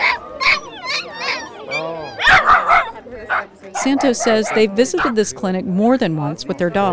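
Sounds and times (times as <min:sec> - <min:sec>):
two small white poodle mix dogs barking at a veterinary clinic: 0:00.0 - 0:05.2
speech: 0:03.7 - 0:06.9.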